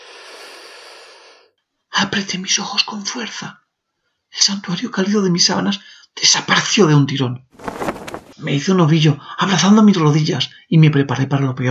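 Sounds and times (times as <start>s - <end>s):
long heavy rasping exhale: 0.0s - 1.5s
speech: 2.0s - 3.6s, 4.4s - 7.7s, 8.4s - 11.6s.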